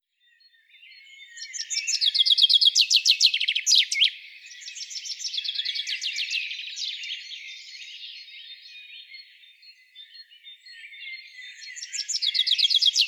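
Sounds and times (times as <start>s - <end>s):
quieter trilled bird song: 0.0s - 13.0s
common chaffinch Fringilla coelebs singing: 1.3s - 7.3s, 11.4s - 13.0s.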